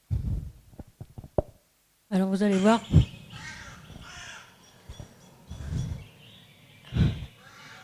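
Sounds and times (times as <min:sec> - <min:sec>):
speech: 0:02.1 - 0:03.1
crow cawing while mobbing an eagle-owl: 0:02.5 - 0:04.9, 0:07.3 - 0:07.8.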